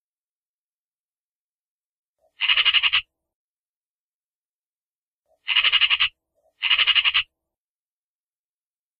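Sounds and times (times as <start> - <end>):
Eurasian magpie giving harsh rattling chatter: 2.4 - 3.1, 5.4 - 7.3.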